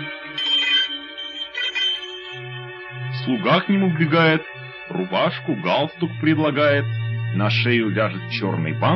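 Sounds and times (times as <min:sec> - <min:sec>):
bell ringing: 0:00.0 - 0:02.7
speech: 0:03.2 - 0:08.9.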